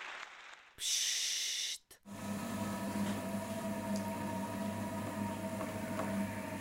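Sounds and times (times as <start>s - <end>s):
speech: 0.8s - 1.0s
potter's wheel spinning with motor hum: 2.1s - 6.6s.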